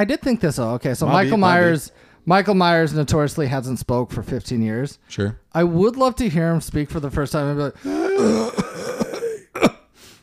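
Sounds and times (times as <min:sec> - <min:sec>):
speech: 0:00.0 - 0:08.9
faint breath: 0:01.9 - 0:02.2
man imitating throat clearing: 0:07.9 - 0:09.9.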